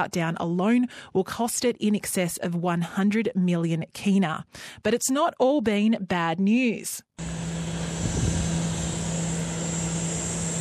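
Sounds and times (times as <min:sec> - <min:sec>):
speech: 0:00.0 - 0:07.3
plane carrying medical supplies touching down, engine and propeller roar: 0:07.2 - 0:10.6.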